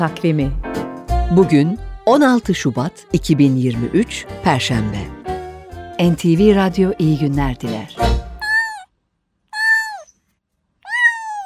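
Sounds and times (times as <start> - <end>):
speech: 0.0 - 5.2, 6.0 - 8.2
jungle cat calling with harsh meow-like cries: 8.4 - 8.8, 9.6 - 10.1, 10.9 - 11.4.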